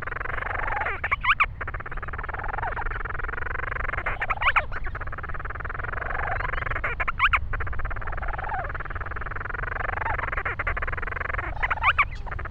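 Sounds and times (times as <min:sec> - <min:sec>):
Grant's storm petrel calling: 0:00.0 - 0:12.4.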